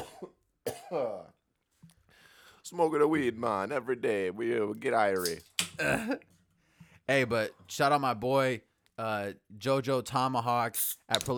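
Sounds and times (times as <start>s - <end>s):
person coughing: 0.0s - 1.3s, 5.8s - 6.3s
speech: 0.2s - 1.4s, 2.7s - 6.3s, 7.1s - 11.3s.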